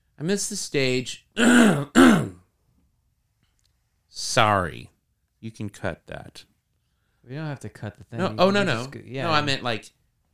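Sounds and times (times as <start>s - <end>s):
speech: 0.2s - 2.3s, 4.2s - 6.5s, 7.2s - 10.0s
person clearing throat: 1.4s - 2.4s.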